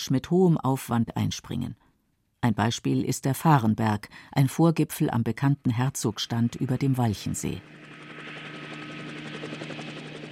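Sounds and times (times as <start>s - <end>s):
speech: 0.0s - 1.8s, 2.4s - 8.0s
helicopter flying overhead: 5.7s - 10.2s.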